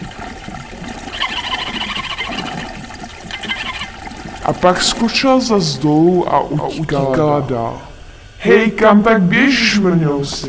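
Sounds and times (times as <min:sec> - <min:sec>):
hissing splashing flow of water: 0:00.0 - 0:10.4
speech: 0:04.5 - 0:10.4.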